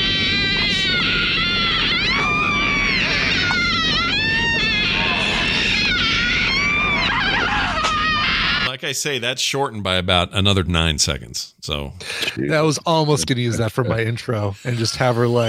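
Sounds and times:
long moaning scream from a woman in a movie: 0:00.0 - 0:08.7
laughter: 0:05.0 - 0:08.7, 0:12.0 - 0:15.4
speech: 0:08.9 - 0:15.4.

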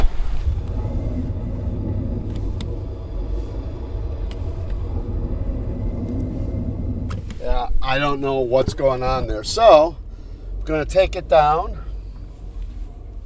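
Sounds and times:
grinding noisy car brakes squeaking and scraping: 0:00.0 - 0:13.2
road rumble from inside a moving car: 0:00.0 - 0:13.2
speech: 0:07.9 - 0:10.0, 0:10.6 - 0:11.8.

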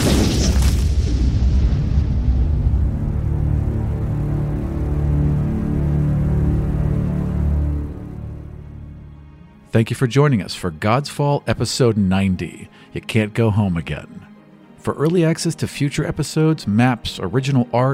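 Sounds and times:
massive explosion with sharp crackling blast: 0:00.0 - 0:08.4
deep heavy rumble after an explosion: 0:00.7 - 0:08.9
speech: 0:09.8 - 0:14.2, 0:14.8 - 0:17.9.

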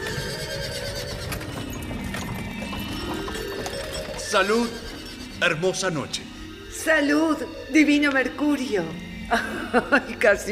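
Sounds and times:
hooves of horse-drawn carriage clopping: 0:00.0 - 0:06.7
carriage horses neighing: 0:00.0 - 0:10.3
speech: 0:04.3 - 0:04.8, 0:05.4 - 0:10.4
laughter: 0:09.3 - 0:10.4.

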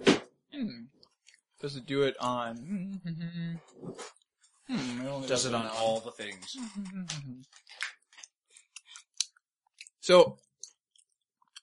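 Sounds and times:
munching on chewy Tootsie Roll candy: 0:01.0 - 0:01.6, 0:05.7 - 0:11.6
speech: 0:01.6 - 0:07.8, 0:10.1 - 0:10.4.

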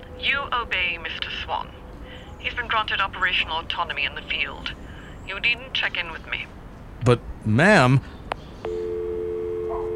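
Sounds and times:
speech: 0:00.3 - 0:01.8, 0:02.4 - 0:08.8
telephone line click: 0:08.7 - 0:09.9.

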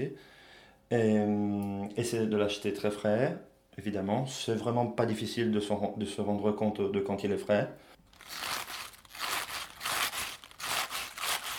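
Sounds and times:
speech: 0:00.0 - 0:08.4
fresh Swiss chard crunching and crinkling as it's handled: 0:08.1 - 0:11.5.

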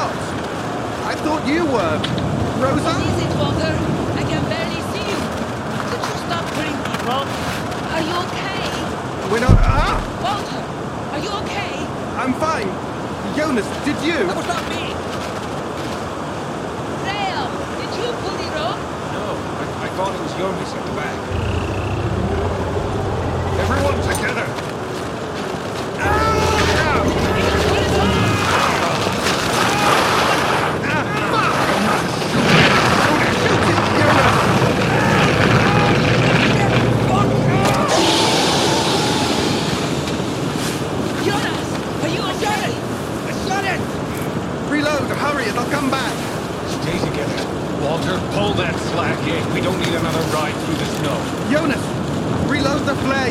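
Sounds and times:
howling gusty storm wind: 0:00.0 - 0:53.2
speech: 0:01.2 - 0:04.4, 0:07.1 - 0:15.1, 0:20.0 - 0:21.6, 0:23.6 - 0:24.6.

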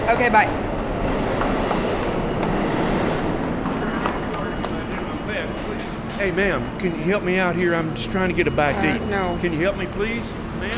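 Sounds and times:
subway train rolling along rails: 0:00.0 - 0:10.7
speech: 0:00.1 - 0:01.2, 0:06.2 - 0:10.7
murmur of voices: 0:03.6 - 0:10.7.

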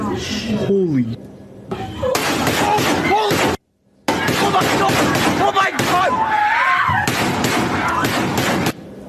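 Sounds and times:
speech: 0:00.2 - 0:01.9
loud harsh gunfire bursts: 0:02.2 - 0:06.0, 0:07.1 - 0:08.8.

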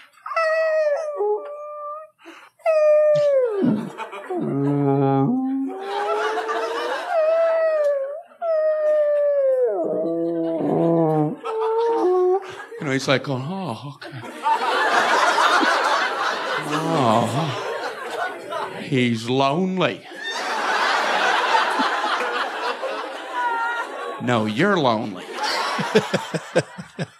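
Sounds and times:
person imitating whale calls: 0:00.2 - 0:12.6, 0:16.6 - 0:17.7
laughter: 0:03.2 - 0:08.1, 0:09.7 - 0:12.9, 0:14.0 - 0:18.9, 0:20.0 - 0:27.1
speech: 0:03.6 - 0:04.7, 0:13.0 - 0:14.3, 0:16.7 - 0:17.7, 0:18.9 - 0:20.1, 0:24.2 - 0:27.1.

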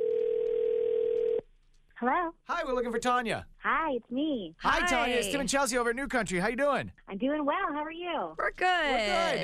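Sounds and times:
telephone dial tone over a phone line while placing a call: 0:00.0 - 0:01.4
speech: 0:02.0 - 0:09.4.

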